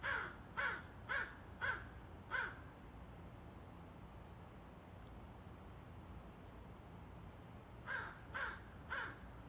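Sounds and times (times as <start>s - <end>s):
several crows cawing harshly: 0.0s - 2.7s, 7.8s - 9.3s.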